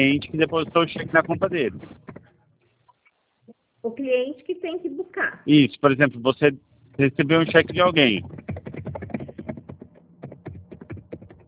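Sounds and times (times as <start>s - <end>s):
speech: 0.0s - 2.2s, 3.8s - 8.6s
rapid irregular typing on a computer keyboard: 7.4s - 11.4s.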